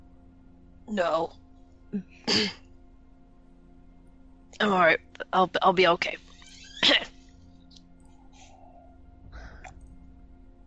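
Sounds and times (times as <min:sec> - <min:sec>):
speech: 0:00.9 - 0:02.6, 0:04.6 - 0:06.2, 0:06.8 - 0:07.1
person coughing: 0:02.3 - 0:02.6.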